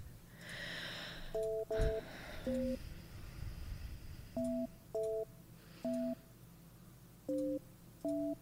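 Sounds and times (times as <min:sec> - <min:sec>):
faint hiss: 0:00.0 - 0:08.4
telephone keypad dialing tones, short electronic two-note beeps: 0:01.3 - 0:02.8, 0:04.4 - 0:05.3, 0:07.3 - 0:08.4
speech: 0:01.4 - 0:02.9.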